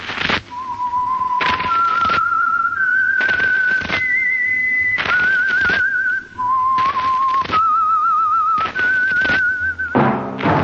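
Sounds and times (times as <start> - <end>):
lone whistled melody: 0.5 - 10.6
loud thumps: 10.0 - 10.6.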